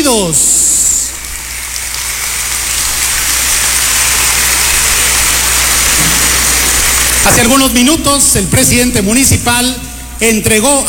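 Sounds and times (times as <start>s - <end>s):
speech: 0.1s - 0.6s, 7.2s - 10.8s
audience applauding at a municipal event: 1.2s - 7.6s.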